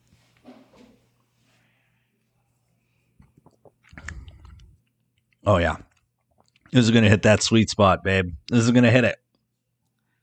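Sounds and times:
person sipping beer: 0:03.1 - 0:06.7
wet gulps of beer: 0:03.2 - 0:06.8
speech: 0:05.5 - 0:05.9, 0:06.7 - 0:09.2.

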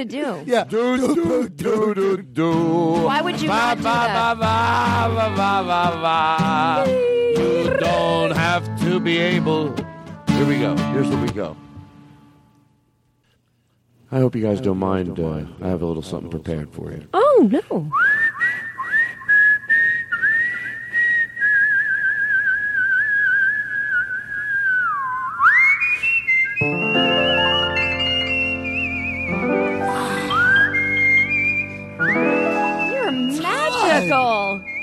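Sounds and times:
speech: 0:00.0 - 0:11.6, 0:14.1 - 0:18.2
person whistling a tune: 0:17.9 - 0:34.8.

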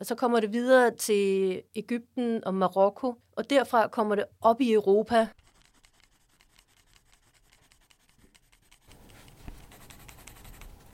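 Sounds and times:
speech: 0:00.0 - 0:05.4
pencil shading a drawing on paper: 0:05.3 - 0:10.9.

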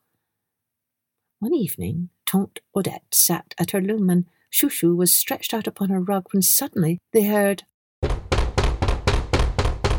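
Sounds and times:
speech: 0:01.4 - 0:08.2
heavy thumping knocks at a door: 0:08.0 - 0:09.9.

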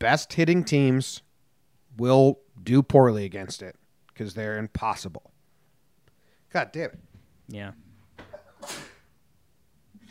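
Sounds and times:
speech: 0:00.0 - 0:01.2, 0:02.0 - 0:05.4, 0:06.5 - 0:07.8, 0:08.6 - 0:08.9
person sneezing: 0:08.3 - 0:09.1.

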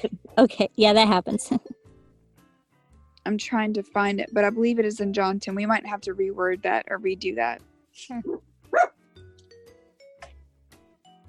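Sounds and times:
speech: 0:00.0 - 0:01.7, 0:03.2 - 0:09.0
dog barking under bedcovers: 0:08.7 - 0:09.0.

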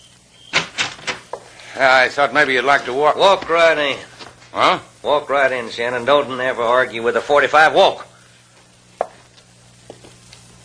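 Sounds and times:
door being opened: 0:00.5 - 0:01.4
speech: 0:01.8 - 0:08.1.

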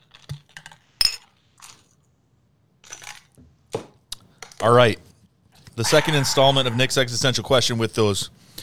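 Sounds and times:
speech: 0:04.6 - 0:05.1, 0:05.8 - 0:08.4
shot glasses clinking in a toast: 0:05.8 - 0:07.3
laughter: 0:05.8 - 0:08.3.

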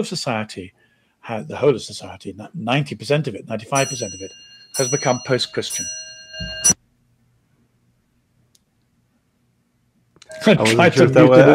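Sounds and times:
speech: 0:00.0 - 0:06.7, 0:10.4 - 0:11.5
bright metallic clock clang: 0:03.8 - 0:06.8
laughter: 0:10.6 - 0:11.5.

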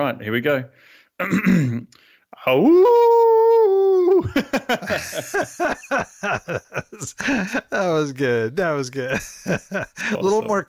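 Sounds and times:
speech: 0:00.0 - 0:03.6, 0:04.2 - 0:10.6
person imitating a dingo howl: 0:02.5 - 0:04.3
laughter: 0:04.2 - 0:07.9, 0:09.0 - 0:10.6.

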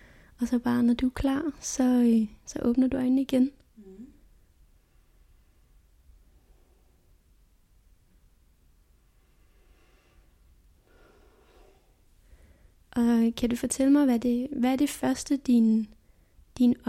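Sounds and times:
person breathing deeply in and out: 0:00.0 - 0:00.4, 0:04.3 - 0:07.4, 0:08.9 - 0:12.9, 0:16.0 - 0:16.5
steady hiss: 0:00.0 - 0:16.8
speech: 0:00.4 - 0:04.1, 0:13.0 - 0:16.0, 0:16.6 - 0:16.8.

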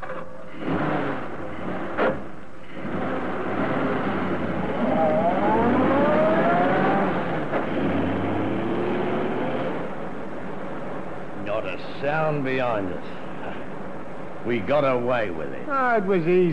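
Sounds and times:
new car engine starting and driving off: 0:00.5 - 0:11.7
speech: 0:12.0 - 0:13.2, 0:14.4 - 0:16.5.

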